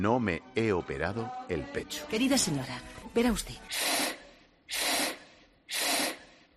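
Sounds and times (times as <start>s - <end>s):
speech: 0.0s - 4.0s
hand pump inflating a balloon: 3.7s - 6.4s.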